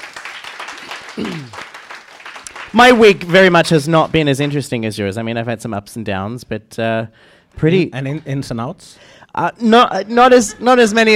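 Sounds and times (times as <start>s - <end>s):
small group clapping: 0.0s - 4.6s
speech: 1.2s - 1.6s, 2.7s - 11.1s.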